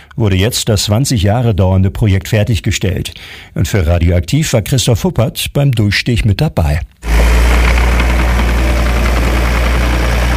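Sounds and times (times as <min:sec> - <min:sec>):
speech: 0:00.2 - 0:07.0
heavy excavator diesel engine roaring and knocking: 0:07.0 - 0:10.3.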